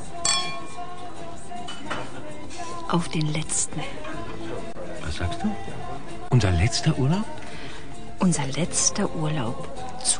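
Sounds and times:
glasses clinking in a toast at a holiday meal: 0.2 - 0.9, 1.6 - 2.2
speech: 2.9 - 4.1, 5.1 - 7.3, 8.2 - 10.1.

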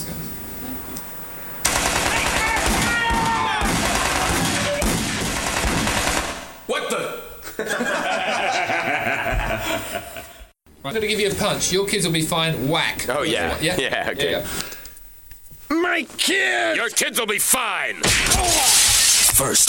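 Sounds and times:
machine-gun fire in a shootout: 1.6 - 6.6
laughter: 7.4 - 10.5
speech: 9.7 - 14.8, 15.9 - 19.6.

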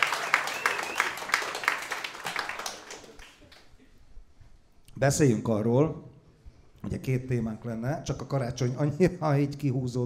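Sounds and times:
audience applause in rhythmic claps: 0.0 - 3.7
speech: 5.0 - 6.1, 6.8 - 10.0.

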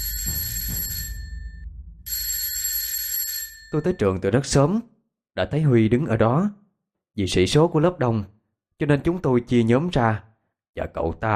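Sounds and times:
alarm clock bell ringing: 0.0 - 4.2
speech: 3.7 - 6.6, 7.2 - 11.3.

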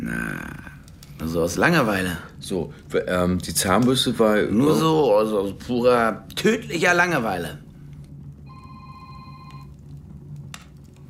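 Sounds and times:
low hum: 0.0 - 11.0
speech: 1.2 - 7.6
telephone ringing: 8.4 - 9.8.

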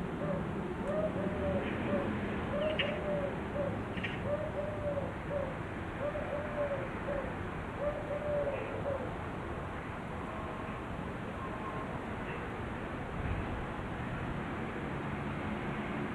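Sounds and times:
city background noise in Marseille, France: 0.0 - 16.1
Common Wood Pigeon male cooing in Marseille, France: 0.2 - 9.1.

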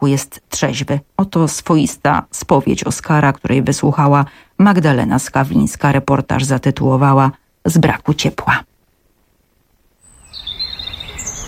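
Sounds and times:
speech: 0.0 - 8.7
soft low rumbling noise: 0.0 - 10.3
birds singing in a city park: 10.0 - 11.4.

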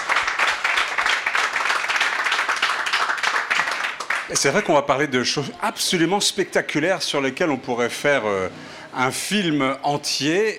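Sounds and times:
audience applause at a public talk on space science: 0.0 - 4.8
speech: 4.3 - 10.5.

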